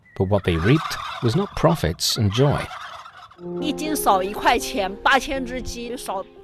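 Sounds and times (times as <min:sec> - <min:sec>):
flock of turkeys gobbling on a farm: 0:00.0 - 0:03.4
speech: 0:00.2 - 0:02.8, 0:03.4 - 0:06.4.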